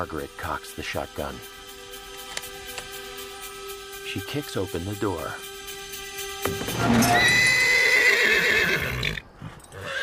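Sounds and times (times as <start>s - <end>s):
speech: 0.0s - 1.6s, 4.1s - 5.5s, 6.4s - 7.5s
horse neighing outside a barn: 6.7s - 10.0s.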